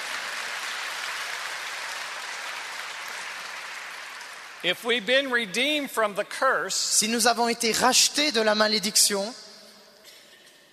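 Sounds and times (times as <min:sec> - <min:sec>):
audience applause at a sermon: 0:00.0 - 0:04.8
speech: 0:04.6 - 0:09.4.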